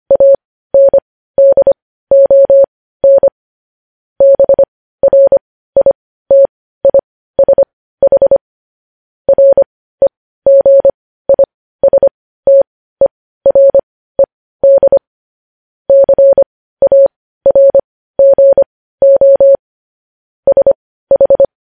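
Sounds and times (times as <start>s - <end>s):
Morse code beeps at a mid pitch: 0.1s - 3.3s, 4.2s - 8.4s, 9.3s - 13.8s, 14.6s - 15.0s, 15.9s - 19.6s, 20.5s - 21.6s.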